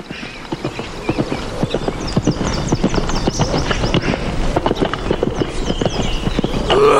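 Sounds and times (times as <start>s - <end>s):
horse hooves clip-clopping: 0.0s - 6.9s.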